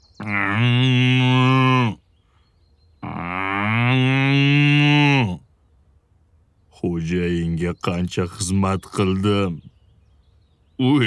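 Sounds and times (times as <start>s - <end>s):
ox mooing in deep bellows: 0.2s - 2.0s, 3.0s - 5.4s
speech: 7.1s - 9.7s, 10.8s - 11.0s.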